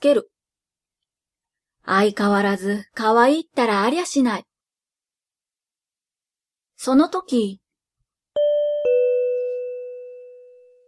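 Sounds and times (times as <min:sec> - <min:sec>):
speech: 0:00.0 - 0:00.4, 0:01.8 - 0:04.5, 0:06.8 - 0:07.6
two-note ding-dong door chime: 0:08.4 - 0:10.8.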